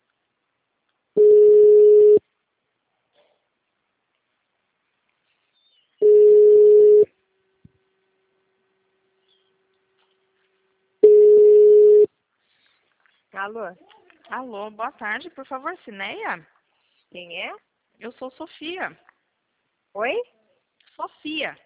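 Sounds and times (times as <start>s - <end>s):
telephone ringback tone while a call waits at an extension: 1.2s - 2.2s, 6.0s - 7.1s, 11.0s - 12.1s
speech: 13.4s - 19.0s, 19.9s - 20.4s, 21.0s - 21.6s.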